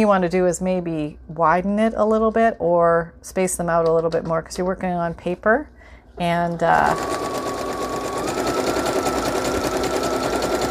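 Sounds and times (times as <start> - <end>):
speech: 0.0 - 7.3
sewing machine stitching around a paper wallet made from a book page: 6.5 - 10.7.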